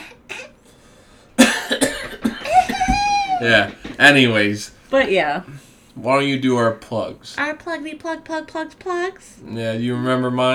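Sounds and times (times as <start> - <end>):
person coughing harshly: 1.4 - 3.7
laughter: 1.4 - 5.6
speech: 3.4 - 10.5.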